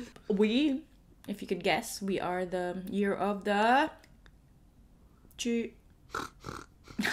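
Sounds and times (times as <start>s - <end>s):
speech: 0.4s - 4.0s, 5.4s - 7.1s
person imitating a pig with nasal oinks and grunting snorts: 6.1s - 7.1s.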